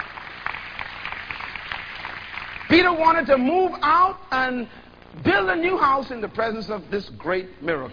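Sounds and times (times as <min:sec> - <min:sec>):
audience clapping during a church service sermon: 0:00.0 - 0:03.0
speech: 0:02.7 - 0:07.9.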